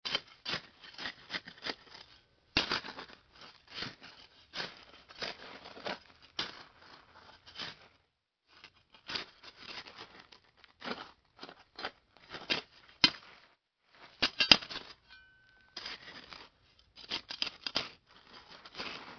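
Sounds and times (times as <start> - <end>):
digging: 0.0 - 19.1.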